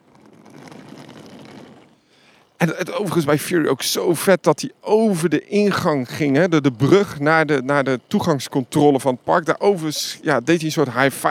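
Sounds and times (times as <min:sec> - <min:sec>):
rolling suitcase wheels clattering across the ground: 0:00.0 - 0:02.6, 0:05.8 - 0:11.3
speech: 0:02.6 - 0:11.3.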